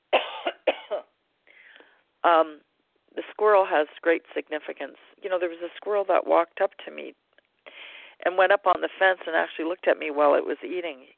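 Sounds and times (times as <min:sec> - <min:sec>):
harsh coughs with a rasping catch: 0:00.1 - 0:01.1
speech: 0:02.2 - 0:02.7, 0:03.4 - 0:07.2, 0:08.2 - 0:11.1.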